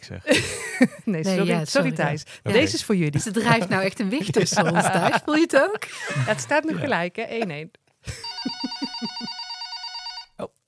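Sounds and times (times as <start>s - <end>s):
speech: 0.0s - 9.4s
laughter: 3.1s - 9.3s
telephone bell ringing with a bright metallic trill: 8.2s - 10.4s.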